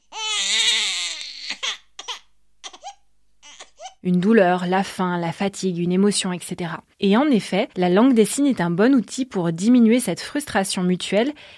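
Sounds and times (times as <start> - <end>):
baby crying: 0.0 - 4.0
speech: 4.0 - 11.5.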